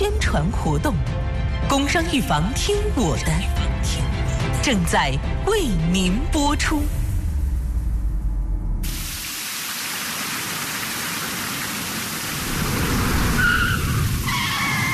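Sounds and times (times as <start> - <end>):
speech: 0.3 - 7.0
low rumble: 5.2 - 9.1
heavy rain hissing: 8.8 - 14.9
bike brakes squealing on wet slippery road: 13.3 - 14.9.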